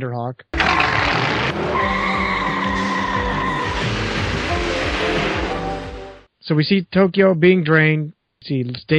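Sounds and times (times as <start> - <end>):
speech: 0.0 - 2.6, 6.4 - 8.9
car engines roaring: 0.6 - 6.3
tires screeching as cars peel out: 0.6 - 6.3.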